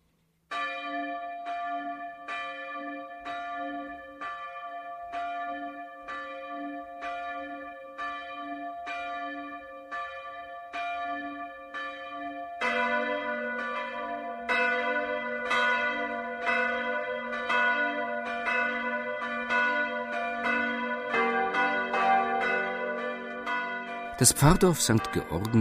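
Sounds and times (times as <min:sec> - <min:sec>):
midday church bells ringing: 0:00.5 - 0:25.5
speech: 0:24.2 - 0:25.5.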